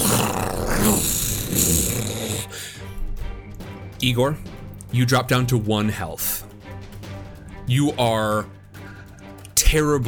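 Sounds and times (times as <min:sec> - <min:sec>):
creature growling and roaring while attacking: 0:00.0 - 0:02.6
speech: 0:04.0 - 0:06.5, 0:07.7 - 0:08.6, 0:09.6 - 0:10.0.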